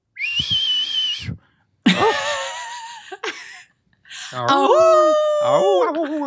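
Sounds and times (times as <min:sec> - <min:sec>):
wolf whistle from a hallway: 0:00.1 - 0:01.4
speech: 0:04.3 - 0:06.2.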